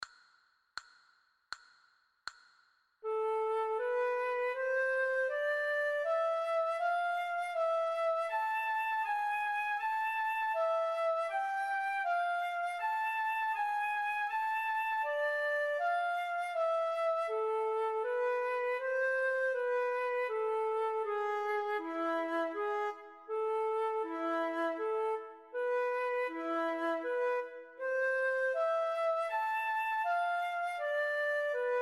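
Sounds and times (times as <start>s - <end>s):
recorder playing a slow waltz: 3.1s - 31.8s.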